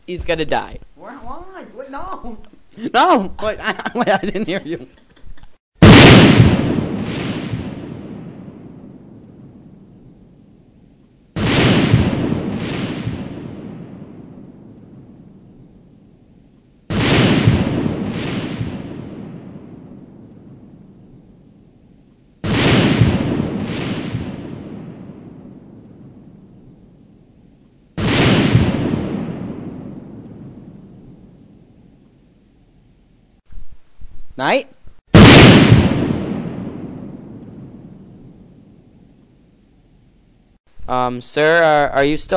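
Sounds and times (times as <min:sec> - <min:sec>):
speech: 0:00.1 - 0:00.9, 0:01.9 - 0:05.0, 0:34.4 - 0:34.7, 0:40.9 - 0:42.3
laughter: 0:02.0 - 0:05.5
grenade explosions in a video game: 0:05.8 - 0:32.0, 0:35.1 - 0:39.2.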